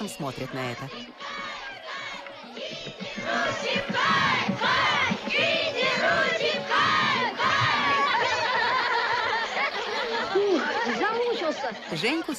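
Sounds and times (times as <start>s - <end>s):
speech: 0.0s - 1.5s, 10.9s - 12.3s
group of Indian schoolchildren shouting and cheering in India: 0.8s - 12.0s
schoolchildren laughing: 7.0s - 12.3s.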